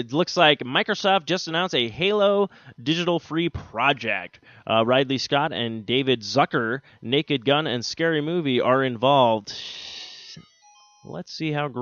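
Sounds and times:
speech: 0:00.0 - 0:11.8
short electronic phone ringtone playing a video game jingle: 0:09.9 - 0:11.2.

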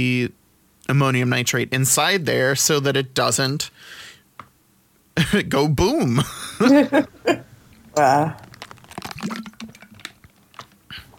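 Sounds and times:
speech: 0:00.0 - 0:04.1, 0:05.2 - 0:08.5, 0:09.2 - 0:09.6
laughter: 0:06.2 - 0:07.5
person sipping water: 0:07.5 - 0:11.1
small gulps of water: 0:07.5 - 0:11.1.

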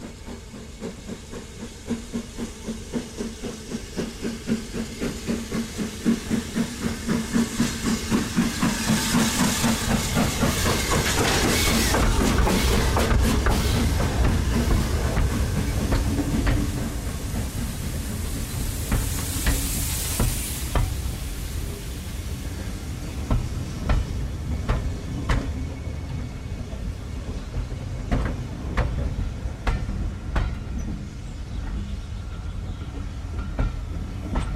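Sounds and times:
steam train chuffing as it approaches a station: 0:00.0 - 0:34.5.

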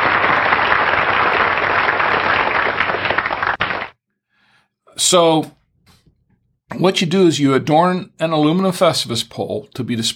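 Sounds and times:
loud dense crowd applause: 0:00.0 - 0:04.0
speech: 0:05.1 - 0:05.6, 0:06.7 - 0:10.1.

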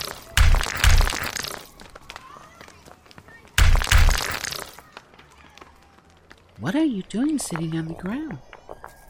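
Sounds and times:
gritty crunches: 0:00.0 - 0:02.8, 0:03.6 - 0:05.8
small rocks clicking: 0:00.0 - 0:03.0, 0:03.6 - 0:06.4
speech: 0:06.6 - 0:08.5.

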